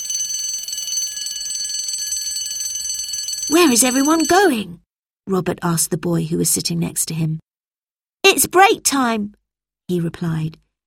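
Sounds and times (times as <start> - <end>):
school bell ringing for break: 0.0 - 4.5
speech: 3.5 - 7.4, 8.3 - 10.6.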